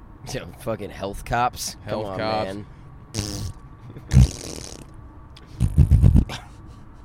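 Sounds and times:
speech: 0.3 - 3.4
mouth-made fart noises on the road: 3.1 - 5.0, 5.6 - 6.3.

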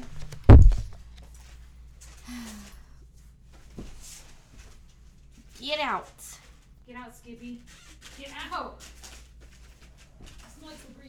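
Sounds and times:
heavy thunk of a door being opened to let a dog out: 0.2 - 1.0
speech: 5.7 - 9.0.

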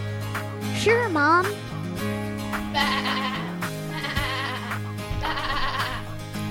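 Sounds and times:
speech: 0.8 - 3.4
person outdoors imitating sheep bleats: 2.7 - 6.1.

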